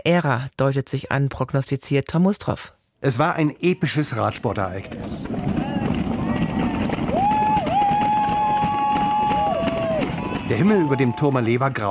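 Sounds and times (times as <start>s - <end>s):
speech: 0.0s - 5.7s, 10.5s - 11.9s
roadside crowd shouting and cheering on cyclists: 5.0s - 11.9s.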